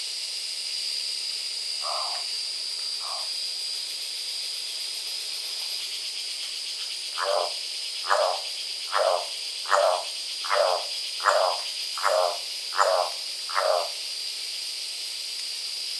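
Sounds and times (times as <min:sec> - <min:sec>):
golden-collared toucanet calling: 0:01.8 - 0:02.2, 0:07.2 - 0:14.0.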